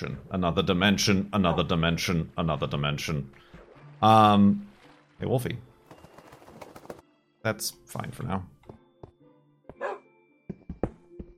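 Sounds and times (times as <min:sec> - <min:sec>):
speech: 0:00.0 - 0:03.4, 0:04.0 - 0:05.7, 0:07.4 - 0:08.5
dog barking: 0:09.7 - 0:10.1.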